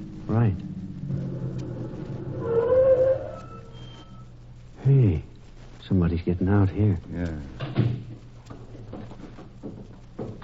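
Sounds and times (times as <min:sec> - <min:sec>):
car engine rumbling as the vehicle approaches: 0:00.0 - 0:03.5
speech: 0:00.3 - 0:00.7, 0:05.9 - 0:07.9.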